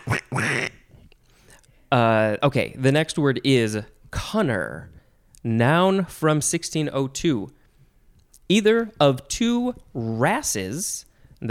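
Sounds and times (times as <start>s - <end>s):
person imitating duck quacks: 0.0s - 0.9s
speech: 1.9s - 7.6s, 8.5s - 11.4s.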